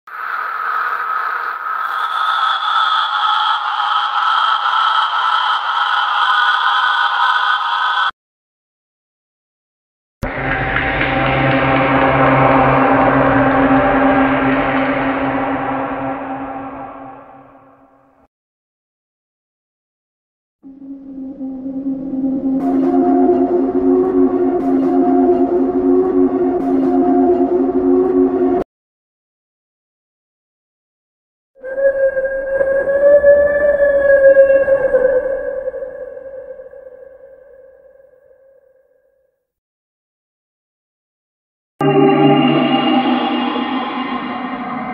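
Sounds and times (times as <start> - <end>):
creepy horror sounds: 0.1 - 8.2, 10.2 - 18.3, 20.6 - 28.7, 31.6 - 38.8, 41.8 - 44.9.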